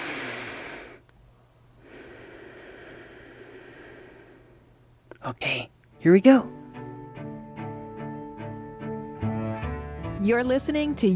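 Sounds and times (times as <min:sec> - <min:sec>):
slow deep breath taken to relax: 0:00.0 - 0:01.1, 0:01.8 - 0:04.9
speech: 0:05.2 - 0:06.6, 0:10.3 - 0:11.1.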